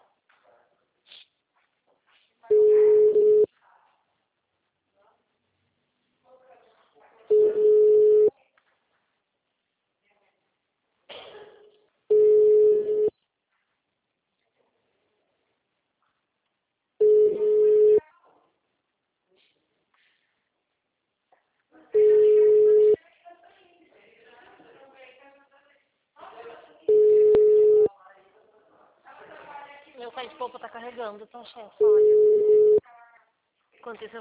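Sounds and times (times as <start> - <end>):
telephone busy signal tone: 2.5 - 3.5, 7.3 - 8.3, 12.1 - 13.1, 17.0 - 18.0, 22.0 - 23.0, 26.9 - 27.9, 31.8 - 32.8
speech: 31.0 - 32.8, 33.8 - 34.2.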